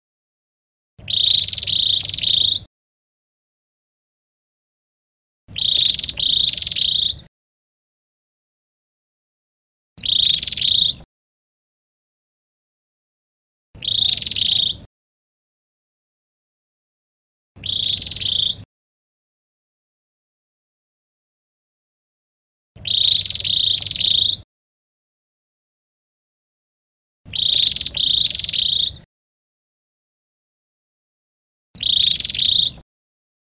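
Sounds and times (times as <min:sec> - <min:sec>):
Cambodian prinia bird singing: 0:01.0 - 0:02.7, 0:05.5 - 0:07.3, 0:10.0 - 0:11.1, 0:13.8 - 0:14.9, 0:17.6 - 0:18.7, 0:22.8 - 0:24.4, 0:27.3 - 0:29.1, 0:31.8 - 0:32.8.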